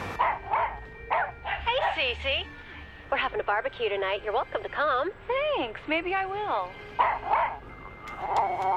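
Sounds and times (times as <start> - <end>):
dog barking: 0.2 - 2.0, 7.0 - 7.7
dog yelping: 0.2 - 2.0, 7.0 - 8.7
speech: 3.1 - 7.3, 8.2 - 8.7.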